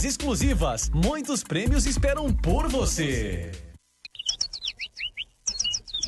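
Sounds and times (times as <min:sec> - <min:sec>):
speech: 0:00.0 - 0:03.7
small bird singing: 0:04.0 - 0:06.0.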